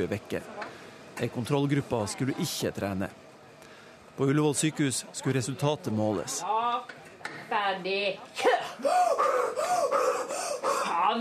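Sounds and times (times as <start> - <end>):
speech: 0.0 - 0.6, 1.2 - 3.2, 4.2 - 7.0, 7.7 - 10.0, 11.1 - 11.2
man breathing heavily during an exercise test: 8.6 - 11.1.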